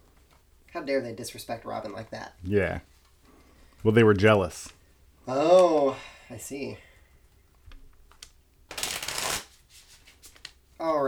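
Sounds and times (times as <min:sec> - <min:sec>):
speech: 0:00.8 - 0:02.9, 0:03.8 - 0:06.9, 0:10.8 - 0:11.0
water-damaged deck of cards being shuffled: 0:08.1 - 0:10.6.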